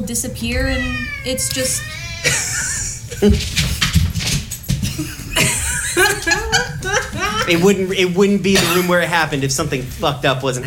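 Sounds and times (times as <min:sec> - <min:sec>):
speech: 0:00.0 - 0:03.8, 0:07.5 - 0:10.6
large dog whimpering and whining: 0:00.6 - 0:03.2
people chuckling in the room: 0:02.0 - 0:03.8, 0:04.8 - 0:08.0.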